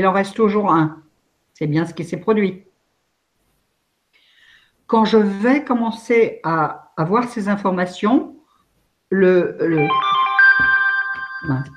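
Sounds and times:
speech: 0:00.0 - 0:01.0, 0:01.6 - 0:02.7, 0:04.9 - 0:08.4, 0:09.1 - 0:10.7, 0:11.4 - 0:11.7
mobile phone electronic ringtone: 0:09.8 - 0:11.7.

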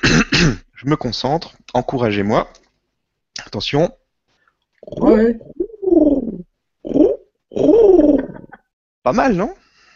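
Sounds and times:
speech: 0:00.8 - 0:02.6, 0:03.5 - 0:04.0, 0:04.8 - 0:05.6, 0:09.0 - 0:09.6
person imitating a cooing pigeon: 0:04.8 - 0:08.7.

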